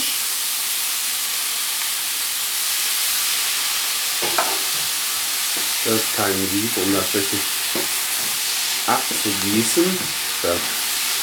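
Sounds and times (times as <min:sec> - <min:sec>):
canned champignon mushrooms sizzling in a hot frying pan: 0:00.0 - 0:11.2
speech: 0:05.8 - 0:07.6, 0:08.9 - 0:10.8
clatter of stirring mushrooms in a frying pan: 0:07.4 - 0:11.2.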